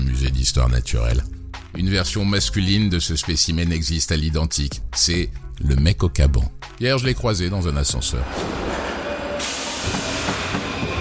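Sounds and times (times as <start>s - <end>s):
speech: 0.3s - 8.6s
metro train running with continuous rumble and hiss: 8.2s - 10.9s.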